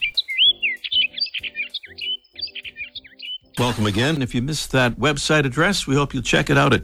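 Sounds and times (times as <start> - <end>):
orchard oriole singing: 0.0 - 4.8
speech: 3.6 - 6.8.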